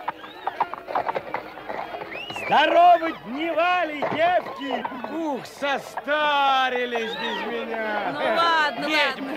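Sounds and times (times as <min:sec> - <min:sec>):
horse stamping and shifting on its hooves in a Cossack village: 0:00.0 - 0:07.2
speech: 0:02.5 - 0:09.3.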